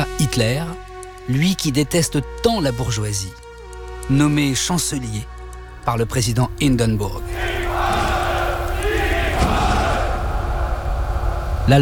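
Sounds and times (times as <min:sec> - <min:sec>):
speech: 0:00.4 - 0:03.4, 0:04.1 - 0:08.0, 0:11.7 - 0:11.8
steady low rumble: 0:05.6 - 0:11.8
large crowd roaring and chanting: 0:07.3 - 0:11.8.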